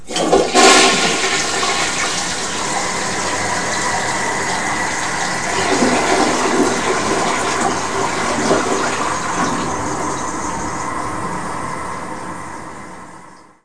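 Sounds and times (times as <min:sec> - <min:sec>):
toilet: 0:00.0 - 0:10.9.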